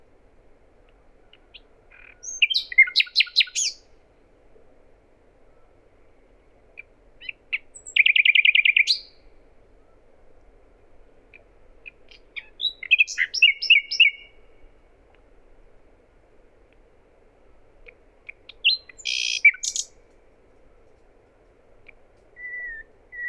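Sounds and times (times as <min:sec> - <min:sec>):
Common nightingale Luscinia megarhynchos singing varied phrases: 0:01.2 - 0:03.8, 0:06.8 - 0:09.2, 0:11.9 - 0:14.6, 0:18.3 - 0:19.9, 0:22.4 - 0:23.2.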